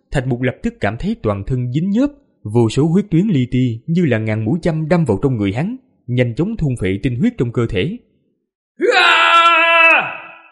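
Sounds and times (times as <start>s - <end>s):
speech: 0.2s - 8.1s, 8.8s - 9.2s
long scream from the sky: 8.8s - 10.5s.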